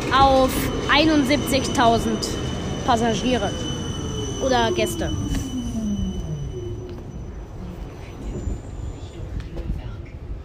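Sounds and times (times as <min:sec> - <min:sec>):
train passing through an airport station without stopping: 0:00.0 - 0:10.4
speech: 0:00.1 - 0:03.7, 0:04.4 - 0:05.3.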